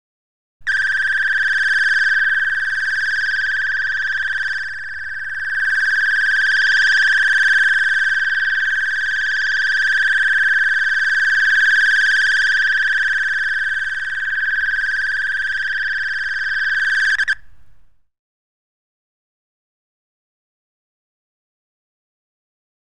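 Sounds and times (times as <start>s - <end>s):
rapid electronic alarm: 0.7s - 17.4s.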